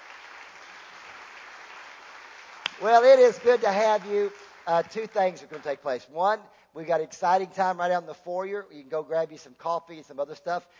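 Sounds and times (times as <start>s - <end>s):
church congregation clapping during a service: 0.0s - 6.0s
speech: 2.8s - 10.7s.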